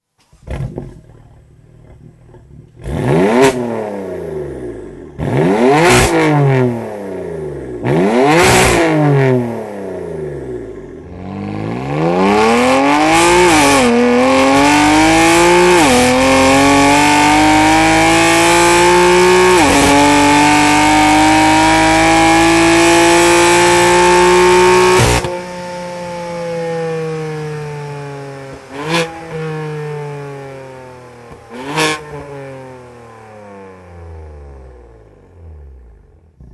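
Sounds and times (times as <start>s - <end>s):
BMW M4 engine with downpipe exhaust: 0.0s - 36.5s.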